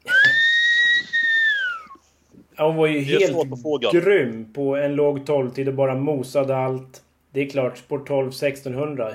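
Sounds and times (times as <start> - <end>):
person whistling: 0.1 - 2.0
speech: 2.6 - 9.1.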